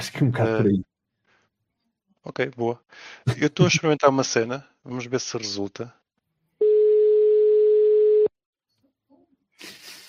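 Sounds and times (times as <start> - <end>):
speech: 0.0 - 0.9, 2.2 - 6.0
telephone line tone while calling home: 6.6 - 8.3.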